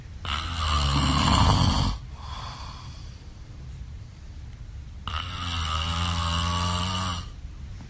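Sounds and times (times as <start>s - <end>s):
man snoring: 0.2s - 3.0s, 5.1s - 7.4s.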